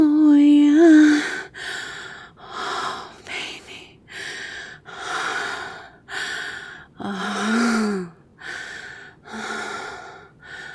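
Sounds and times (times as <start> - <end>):
heavy rhythmic breathing: 1.0 - 10.7.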